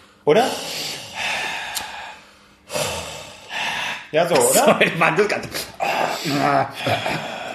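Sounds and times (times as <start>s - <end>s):
person breathing heavily and deliberately: 0.0s - 4.2s, 5.7s - 7.5s
speech: 0.2s - 0.9s, 4.1s - 7.3s
laughter: 4.4s - 7.5s.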